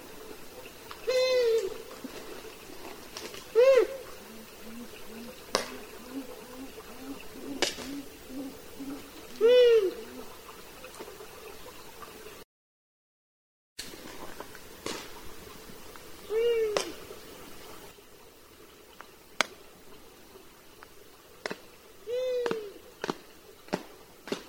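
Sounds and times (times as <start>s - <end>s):
long-eared owl uttering short nasal downslurred calls: 1.0s - 1.9s, 3.5s - 10.5s, 16.2s - 17.0s, 22.0s - 22.8s.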